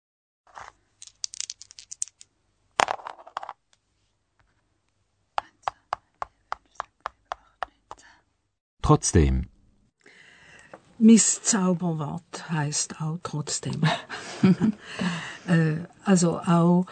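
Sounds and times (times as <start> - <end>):
dice rolled rattling on a hard surface: 0.5 - 3.6
speech: 8.9 - 9.5, 11.0 - 16.8.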